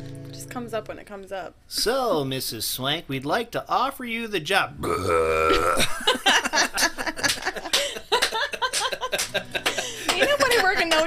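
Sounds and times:
speech: 0:00.5 - 0:06.9, 0:10.8 - 0:11.0
long low droning burp: 0:04.8 - 0:05.9
several people laughing: 0:05.5 - 0:11.0.

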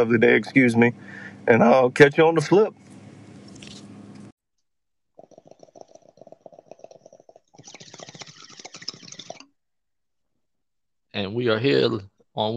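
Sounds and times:
speech: 0:00.0 - 0:02.8, 0:11.2 - 0:12.5
bong being smoked with hiss and wet gurgling bubbles: 0:05.1 - 0:09.6.

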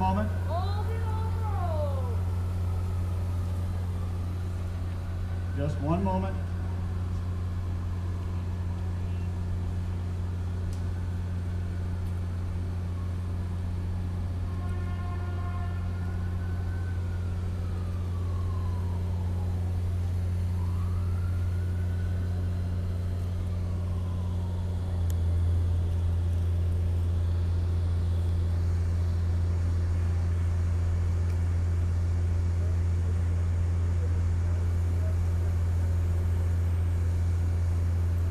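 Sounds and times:
siren rising and falling: 0:00.0 - 0:09.4, 0:10.5 - 0:28.6
low rumble of engines on city streets around city hall: 0:00.0 - 0:38.3
speech: 0:05.6 - 0:06.5
horn blast: 0:14.5 - 0:16.0.

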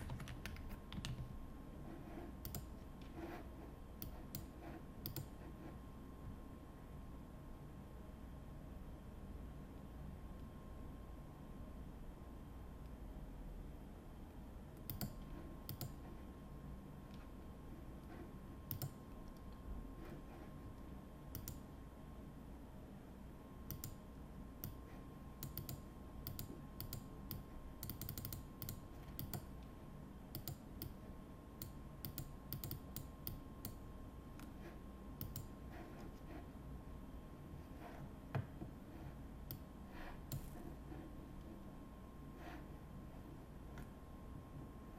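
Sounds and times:
keyboard typing clicks: 0:00.0 - 0:01.3, 0:02.4 - 0:02.7, 0:04.0 - 0:05.4, 0:14.8 - 0:16.0, 0:18.7 - 0:19.5, 0:21.3 - 0:21.6, 0:23.7 - 0:24.0, 0:24.6 - 0:24.8, 0:25.4 - 0:29.5, 0:30.3 - 0:31.0, 0:31.6 - 0:33.8, 0:35.2 - 0:35.5
faint constant tone: 0:00.0 - 0:44.9
steady low hum: 0:00.0 - 0:44.9.

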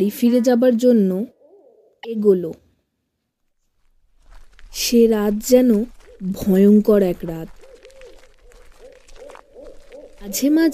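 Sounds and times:
speech: 0:00.0 - 0:01.4, 0:02.0 - 0:02.6, 0:04.7 - 0:07.6, 0:10.2 - 0:10.7
owls hooting at night: 0:01.2 - 0:02.3, 0:05.3 - 0:10.7.

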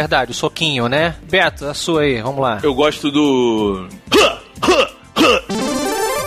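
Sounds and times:
speech: 0:00.0 - 0:04.8
voice mimicking a video game character's pain grunt: 0:04.1 - 0:05.6.

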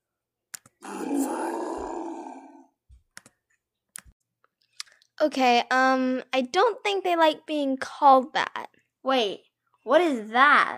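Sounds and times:
monkey giving a long rough throaty grunt: 0:00.8 - 0:02.7
speech: 0:05.2 - 0:10.7.

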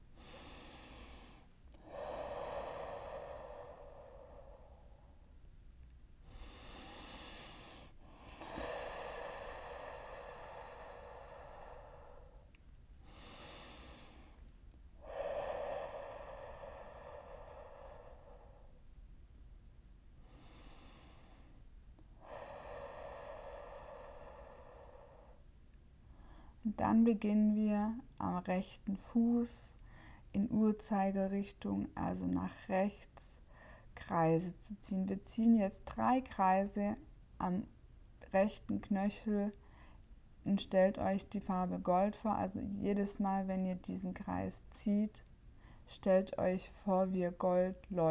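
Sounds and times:
slow deep breathing in and out: 0:00.0 - 0:05.4, 0:06.2 - 0:19.0, 0:20.2 - 0:26.6, 0:29.8 - 0:30.3
speech: 0:26.7 - 0:33.1, 0:34.1 - 0:39.6, 0:40.4 - 0:45.3, 0:45.9 - 0:48.0.

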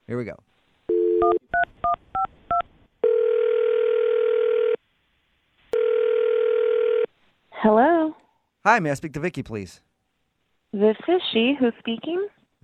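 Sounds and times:
speech: 0:00.1 - 0:00.5, 0:07.6 - 0:09.9, 0:10.7 - 0:12.6
telephone dial tone: 0:00.9 - 0:01.4, 0:03.0 - 0:04.8, 0:05.8 - 0:07.1.

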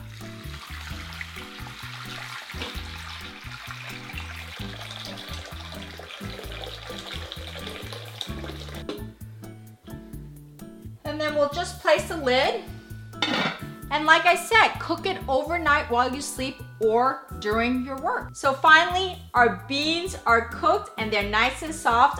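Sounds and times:
water pouring into a crock pot: 0:00.0 - 0:09.1
bouncy music track: 0:00.0 - 0:22.1
speech: 0:11.4 - 0:12.7, 0:14.0 - 0:22.1.

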